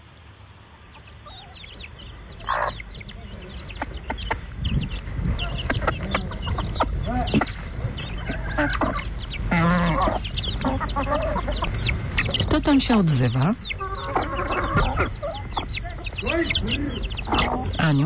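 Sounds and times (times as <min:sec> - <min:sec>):
chickens clucking and squawking: 0:00.0 - 0:18.0
small birds calling: 0:00.0 - 0:18.0
broody hen: 0:00.6 - 0:18.0
rooster-like cry: 0:08.2 - 0:11.6, 0:13.8 - 0:15.4
speech: 0:12.7 - 0:13.7, 0:17.9 - 0:18.0.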